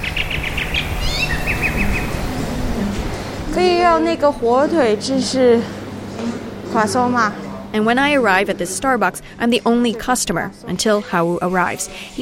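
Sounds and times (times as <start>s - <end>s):
birds singing in a nearly empty Shanghai street: 0.0s - 3.4s
speech: 3.6s - 12.2s.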